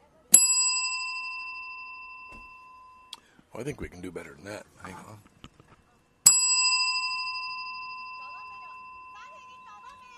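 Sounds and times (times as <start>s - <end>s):
single bright bell strike ringing: 0.4s - 3.2s, 6.2s - 10.1s
speech: 3.6s - 5.4s.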